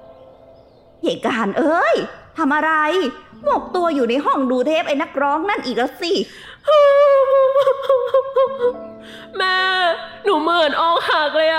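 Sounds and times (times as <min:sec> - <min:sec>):
speech: 0:01.0 - 0:07.0, 0:07.6 - 0:11.5
heartbroken girl crying alone in her room: 0:06.7 - 0:11.5.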